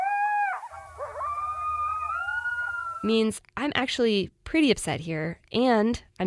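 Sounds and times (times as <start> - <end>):
coyotes howling and yipping: 0.0 - 3.1
speech: 3.0 - 6.2.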